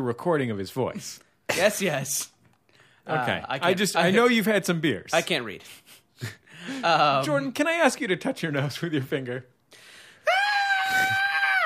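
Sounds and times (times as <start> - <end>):
speech: 0.0 - 2.3, 3.0 - 9.9
man yelling: 10.3 - 11.6.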